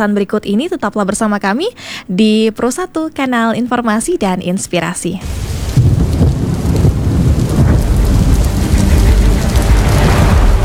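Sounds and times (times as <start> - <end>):
speech: 0.0 - 5.6
deep rolls of thunder rumbling: 5.2 - 10.6
heavy rain pouring: 5.2 - 10.6.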